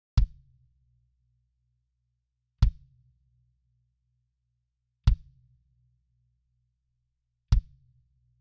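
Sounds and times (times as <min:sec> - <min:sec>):
equalized kick drum: 0:00.2 - 0:00.4, 0:02.6 - 0:03.0, 0:05.0 - 0:05.4, 0:07.5 - 0:07.9.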